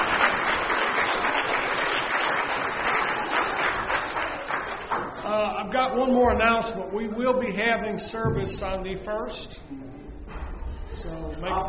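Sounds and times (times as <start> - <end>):
dense applause from a crowd: 0.0 - 5.3
speech: 5.9 - 9.8, 11.0 - 11.6.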